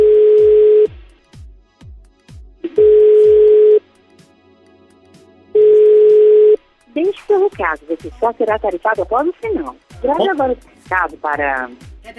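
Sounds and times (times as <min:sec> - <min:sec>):
telephone call ringing tone: 0:00.0 - 0:00.9, 0:02.7 - 0:03.8, 0:05.6 - 0:06.6
speech: 0:07.7 - 0:12.1.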